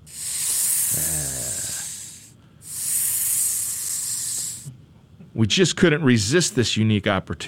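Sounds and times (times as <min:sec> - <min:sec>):
cobra hissing: 0:00.0 - 0:04.7
speech: 0:05.4 - 0:07.4.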